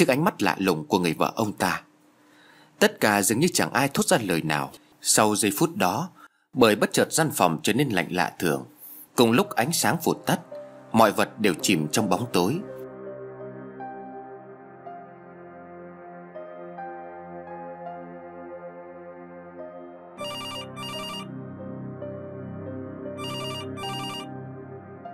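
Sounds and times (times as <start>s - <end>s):
speech: 0.0s - 1.9s, 2.8s - 12.7s
steady sustained tonal background: 9.5s - 25.1s
telephone ringtone in short double bursts: 20.2s - 21.3s, 23.2s - 24.3s.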